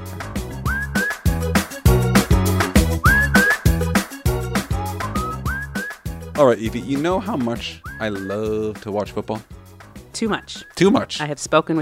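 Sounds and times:
rhythmic instrumental music with a strong beat: 0:00.0 - 0:11.8
person whistling a tune: 0:00.6 - 0:01.6, 0:02.8 - 0:04.0, 0:04.6 - 0:06.2, 0:07.8 - 0:08.6
speech: 0:06.4 - 0:09.6, 0:10.2 - 0:11.8.

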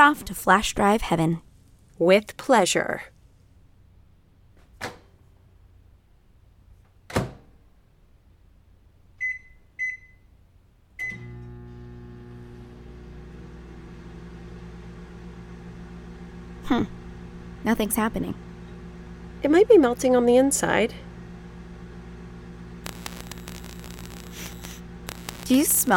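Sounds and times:
speech: 0:00.0 - 0:03.1, 0:17.6 - 0:18.5, 0:19.4 - 0:21.1, 0:25.5 - 0:25.9
microwave oven running with a steady low hum: 0:11.0 - 0:25.9.

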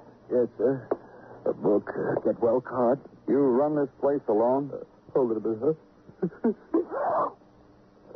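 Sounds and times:
speech: 0:00.4 - 0:07.4
forceful sneeze: 0:06.8 - 0:07.4.

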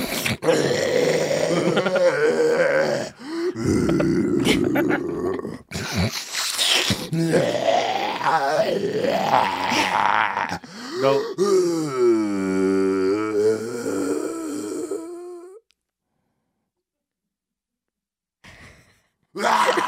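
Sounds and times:
voice imitating a man's deep snoring and choking: 0:00.0 - 0:15.6.

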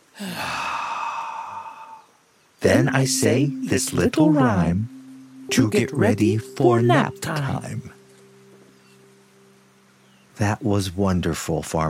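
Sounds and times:
deep breath in and out: 0:00.1 - 0:02.2
speech: 0:02.6 - 0:08.0, 0:10.4 - 0:11.8.

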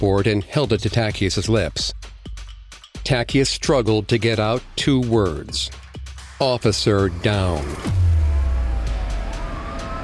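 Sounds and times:
speech: 0:00.0 - 0:02.1, 0:03.0 - 0:05.8, 0:06.4 - 0:08.1
ambulance siren of ambulances speeding to a scene: 0:07.1 - 0:10.0.

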